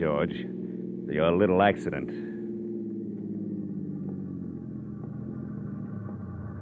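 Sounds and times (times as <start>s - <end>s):
speech: 0.0s - 2.3s
distant train approaching a crossing on the outskirts of town: 0.0s - 6.5s.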